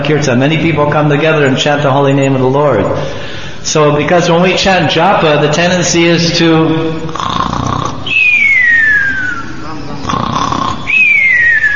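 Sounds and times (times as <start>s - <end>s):
speech: 0.1s - 7.6s
person imitating snoring: 7.0s - 8.6s, 9.9s - 11.4s.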